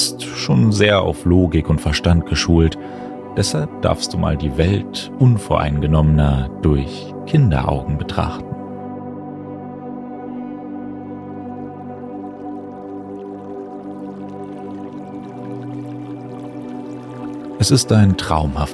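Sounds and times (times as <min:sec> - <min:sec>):
speech: 0:00.4 - 0:08.5, 0:17.6 - 0:18.7
gently babbling brook: 0:12.2 - 0:18.2.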